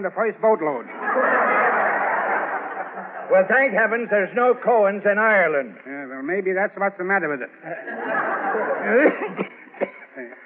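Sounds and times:
speech: 0.0s - 1.6s, 3.3s - 8.0s, 8.6s - 9.5s
laughter: 0.9s - 4.4s, 7.6s - 10.4s
rough hacking coughs: 8.9s - 10.4s.

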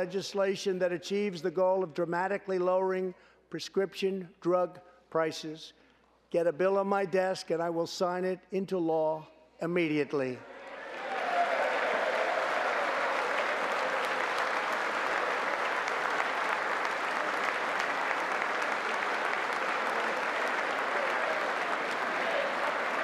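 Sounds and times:
speech: 0.0s - 10.5s
sustained applause from a large audience: 10.6s - 23.0s.

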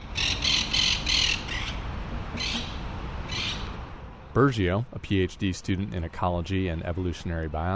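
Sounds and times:
monk parakeets squawking and chattering: 0.0s - 3.8s
steady low outdoor rumble: 0.0s - 7.7s
speech: 4.4s - 7.7s.

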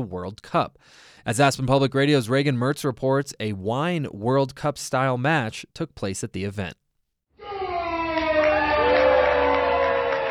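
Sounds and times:
speech: 0.0s - 6.8s
crowd cheering at wine tasting event: 7.4s - 10.2s
whoops and yells: 7.4s - 10.2s.

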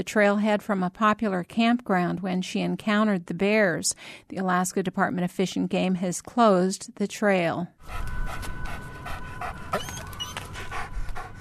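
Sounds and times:
speech: 0.0s - 8.8s
police dog panting rapidly: 7.8s - 11.3s.

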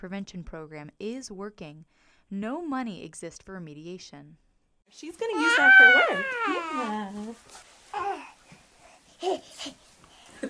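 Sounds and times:
speech: 0.0s - 8.2s, 9.2s - 9.8s
toddlers babbling and cooing while playing on a living room floor in Ohio County West Virginia: 5.3s - 7.1s.

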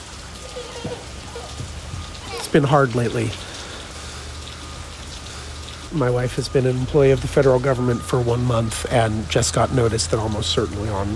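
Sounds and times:
steady rain pattering on a porch on a cold morning: 0.0s - 11.1s
man speaking in a low voice: 2.3s - 3.4s, 5.9s - 11.1s
speech: 2.5s - 3.5s, 5.9s - 11.1s.

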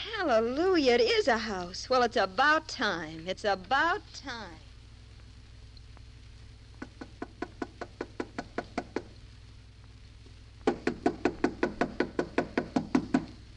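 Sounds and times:
speech: 0.2s - 4.7s
knuckles knocking on the wooden door of a house: 6.8s - 9.1s, 10.7s - 13.4s.

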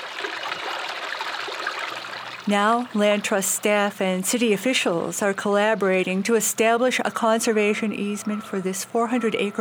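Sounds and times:
creek pouring over and beneath a low-water concrete bridge: 0.0s - 3.1s
speech: 2.4s - 9.5s.

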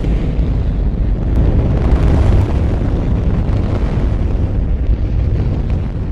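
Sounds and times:
Saturn rocket first stage engines roaring in a test firing: 0.0s - 6.1s.

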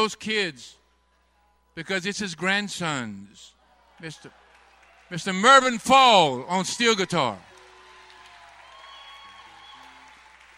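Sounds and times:
speech: 0.0s - 0.8s, 1.8s - 4.4s, 5.1s - 7.5s
crowd applauding and cheering: 3.7s - 10.5s.

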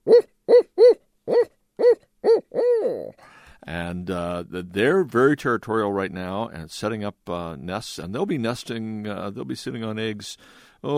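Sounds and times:
barred owl hooting: 0.0s - 3.2s
speech: 0.1s - 0.3s, 3.7s - 10.9s.

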